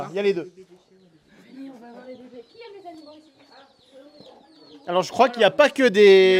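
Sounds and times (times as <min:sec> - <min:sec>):
speech: 0:00.0 - 0:00.7, 0:04.8 - 0:06.3
flock of baby chicks cheeping: 0:00.3 - 0:06.3.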